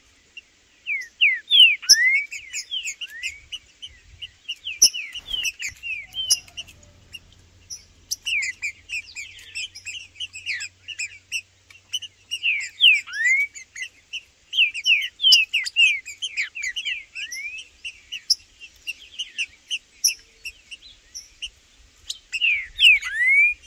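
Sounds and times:
green-winged saltator singing in the bush: 0:00.8 - 0:23.6
sharp high chirping notes of a rival green-winged saltator: 0:04.8 - 0:11.1.

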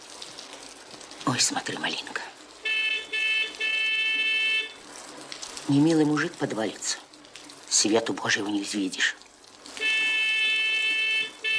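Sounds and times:
speech: 0:01.4 - 0:02.4, 0:05.7 - 0:07.0, 0:07.8 - 0:09.2
car horn honking: 0:02.6 - 0:04.8, 0:09.8 - 0:11.5.

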